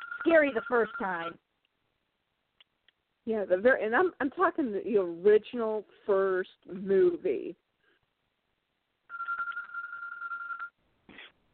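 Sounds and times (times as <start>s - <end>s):
pet bird mimicking a telephone ringing: 0.0s - 1.3s, 9.1s - 10.7s
speech: 0.2s - 1.4s, 3.2s - 7.6s.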